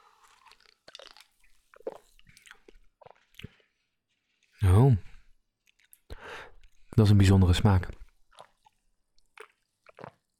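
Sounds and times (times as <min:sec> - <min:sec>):
speech: 0:04.6 - 0:05.1, 0:07.0 - 0:08.0
person sipping fizzy sparkling soda: 0:09.4 - 0:10.3.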